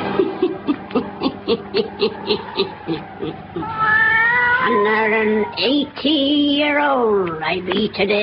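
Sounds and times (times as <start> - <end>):
laughter: 0.1 - 3.9
black cat yowling and meowing: 1.7 - 5.8
speech: 7.0 - 8.2.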